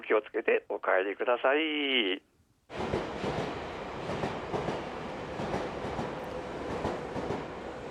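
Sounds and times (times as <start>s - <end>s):
speech: 0.1s - 3.0s
electric passenger train wheels clicking on rails: 2.7s - 7.8s.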